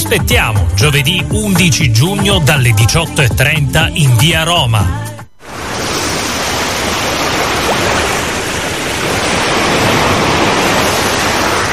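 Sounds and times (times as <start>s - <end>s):
speech: 0.1s - 5.1s
sea waves: 5.4s - 11.7s.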